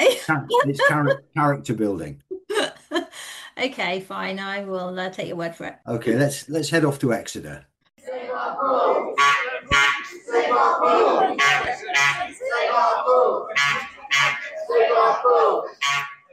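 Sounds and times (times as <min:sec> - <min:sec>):
speech: 0:00.0 - 0:02.2, 0:03.6 - 0:16.0
protest crowd of swimming pool campaigners chanting in Exeter: 0:08.0 - 0:16.3
shrill shouts from protest crowd: 0:08.0 - 0:16.3.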